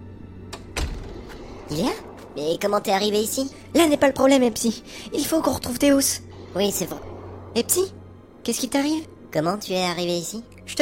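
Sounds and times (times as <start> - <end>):
green door shutting with a louder thump: 0.5 - 1.4
green door opening with a soft rush: 0.5 - 1.7
speech: 1.7 - 10.8.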